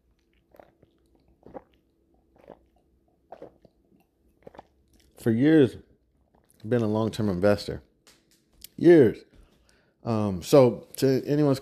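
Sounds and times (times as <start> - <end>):
person sipping a drink with wet gulping: 0.0 - 5.2
speech: 5.2 - 5.9, 6.6 - 7.9, 8.8 - 9.3, 10.0 - 11.6.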